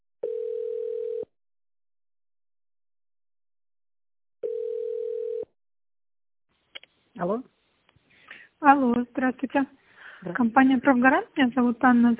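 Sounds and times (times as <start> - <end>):
telephone ringback tone while waiting for an operator: 0.2 - 1.3, 4.4 - 5.5
speech: 7.2 - 7.6, 8.6 - 12.1.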